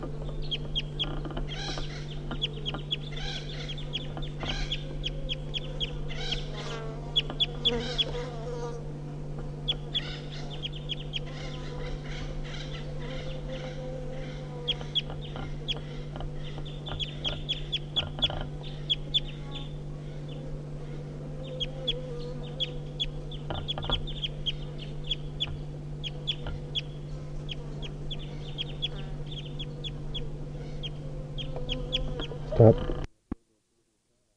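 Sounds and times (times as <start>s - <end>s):
constant low droning hum: 0.0s - 33.3s
wild birds giving flight calls: 0.2s - 8.3s, 9.7s - 32.8s
speech: 32.6s - 32.9s.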